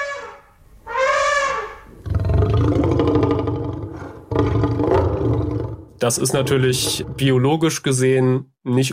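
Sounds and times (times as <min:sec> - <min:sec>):
movie dinosaur roar from elephant and lion sounds: 0:02.0 - 0:07.4
speech: 0:06.0 - 0:08.9.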